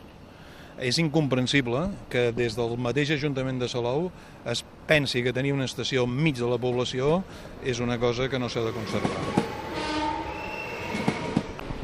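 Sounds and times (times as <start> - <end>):
speech: 0.8 - 9.4
train rolling into station with mechanical rumble: 5.8 - 11.8
sustained train horn tone: 8.8 - 11.6.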